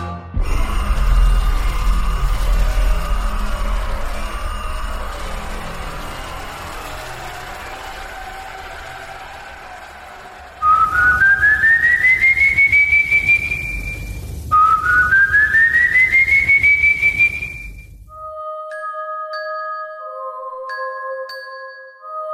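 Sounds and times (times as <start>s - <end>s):
low rumbling ambience: 0.3s - 9.0s, 10.6s - 16.6s
long eerie whistles sliding upward in pitch: 0.4s - 17.9s.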